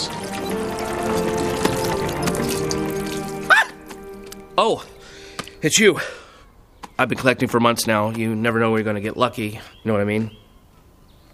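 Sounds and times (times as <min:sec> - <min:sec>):
water trickling from a bellows-pumped water wheel onto soil: 0:00.0 - 0:05.7
soft music: 0:00.0 - 0:06.0
speech: 0:04.6 - 0:04.9, 0:05.6 - 0:06.2, 0:07.0 - 0:10.4.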